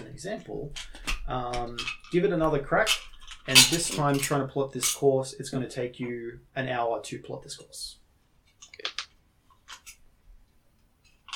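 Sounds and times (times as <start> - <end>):
speech: 0.2 - 8.0
dice rattling and clacking across a hard surface: 8.6 - 9.2.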